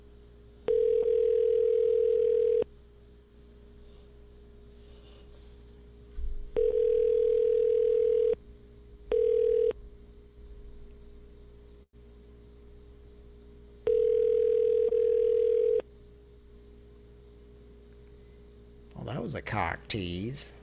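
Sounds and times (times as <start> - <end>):
telephone dial tone: 0.7 - 2.6, 6.6 - 8.4, 9.1 - 9.7, 13.9 - 15.8
speech: 19.3 - 20.6.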